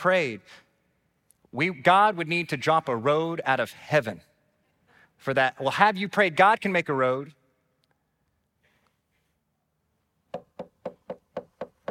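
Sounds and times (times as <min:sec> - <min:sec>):
speech: 0:00.0 - 0:00.6, 0:01.5 - 0:04.3, 0:05.2 - 0:07.4
rancher knocking on a wooden door: 0:10.3 - 0:11.8.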